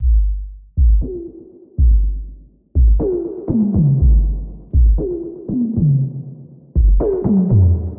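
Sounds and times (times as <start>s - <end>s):
drum loop at 120 beats: 0.0s - 5.3s, 6.8s - 7.6s.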